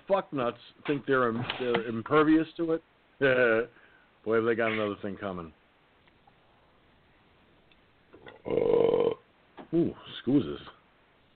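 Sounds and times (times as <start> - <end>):
speech: 0.1 - 5.6, 8.2 - 9.0, 9.7 - 10.8
loud drawn-out low rumbling burp: 8.2 - 9.3.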